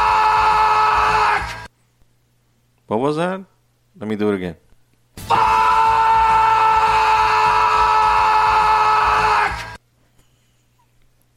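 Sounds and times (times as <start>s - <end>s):
person screaming angrily: 0.0s - 1.6s, 5.2s - 9.8s
speech: 2.9s - 4.6s, 5.2s - 5.5s.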